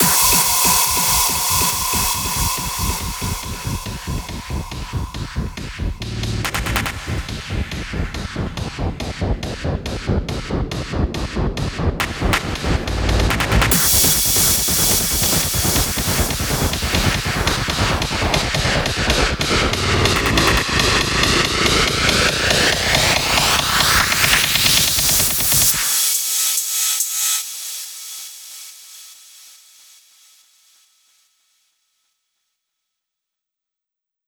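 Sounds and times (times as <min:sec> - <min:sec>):
hands-up trance fills: 0:00.0 - 0:27.1.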